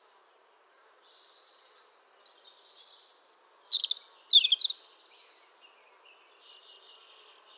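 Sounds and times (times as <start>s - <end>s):
European robin Erithacus rubecula song of whistled notes and trills: 2.6s - 4.9s.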